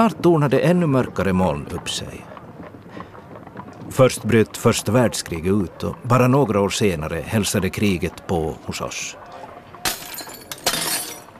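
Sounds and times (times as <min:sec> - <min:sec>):
speech: 0:00.0 - 0:02.4, 0:03.9 - 0:09.3
shop window glass smashed by hooligans in Turku: 0:09.8 - 0:11.3
ringing spray of falling glass shards: 0:09.9 - 0:11.3.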